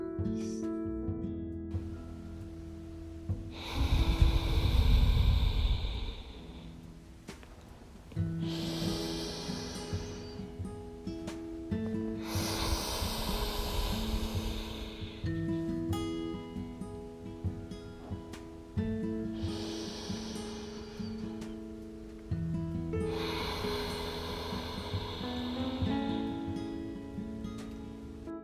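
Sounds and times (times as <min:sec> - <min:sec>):
soft sustained instrumental drone: 0:00.2 - 0:28.3
slow deep breaths in a guided breathing practice: 0:01.7 - 0:28.3.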